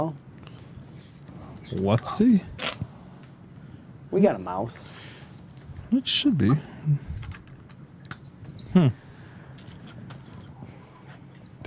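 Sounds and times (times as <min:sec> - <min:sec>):
speech: 0:00.0 - 0:00.2, 0:01.7 - 0:02.9, 0:04.1 - 0:05.1, 0:05.9 - 0:07.1, 0:08.8 - 0:09.0
typing on a computer keyboard: 0:07.2 - 0:08.4.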